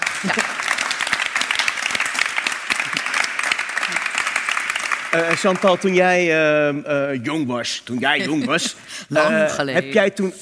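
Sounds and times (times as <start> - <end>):
audience applause: 0.0 - 6.2
speech: 0.2 - 0.5, 5.2 - 10.4
laughter: 8.0 - 9.8.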